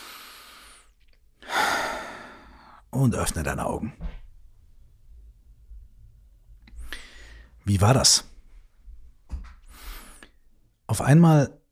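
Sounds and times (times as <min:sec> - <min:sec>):
deep breath in through nose: 0:00.0 - 0:02.8, 0:09.7 - 0:10.4
speech: 0:03.0 - 0:04.2, 0:07.7 - 0:08.3, 0:10.9 - 0:11.6.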